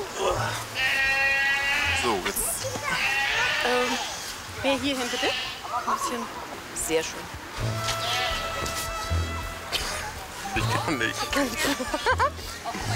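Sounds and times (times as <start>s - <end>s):
goats bleating: 0.2s - 6.2s, 7.8s - 9.3s
speech: 4.6s - 7.9s, 10.9s - 12.9s
laughter: 9.7s - 12.9s.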